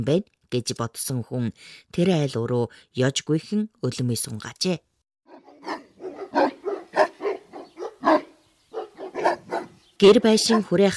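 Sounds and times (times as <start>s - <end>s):
speech: 0.0s - 4.9s, 10.0s - 10.9s
guard dog barking: 5.3s - 9.8s, 10.4s - 10.8s.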